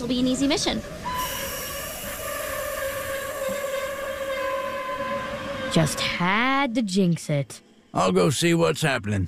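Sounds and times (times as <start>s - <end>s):
speech: 0.0s - 1.4s, 5.7s - 9.2s
train running along the tracks: 0.0s - 6.7s
sustained tonal whines: 0.0s - 7.0s.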